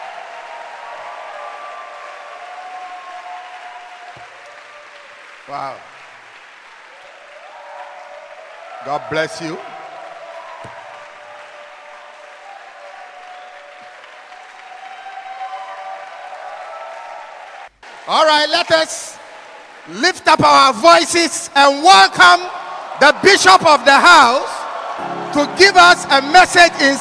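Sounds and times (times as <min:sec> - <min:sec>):
large church audience applauding: 0:00.0 - 0:26.9
speech: 0:05.5 - 0:06.0, 0:08.8 - 0:09.7, 0:18.1 - 0:19.2, 0:19.9 - 0:24.5, 0:25.3 - 0:26.9.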